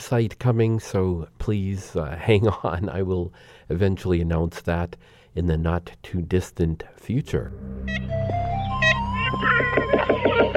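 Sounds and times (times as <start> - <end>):
speech: 0.1 - 10.5
ivory-billed woodpecker calls: 8.0 - 10.5.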